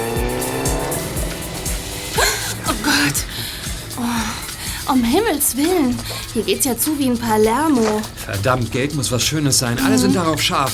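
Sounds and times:
motorcycle engine revving and roaring off through gears: 0:00.0 - 0:06.1
speech: 0:04.9 - 0:10.7.

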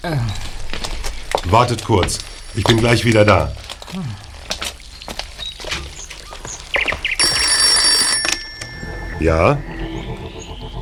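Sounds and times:
speech: 0:00.0 - 0:00.5, 0:01.4 - 0:04.2, 0:09.2 - 0:09.7
knocks and footstep-like taps: 0:00.3 - 0:08.9
telephone ringing: 0:07.2 - 0:10.8.

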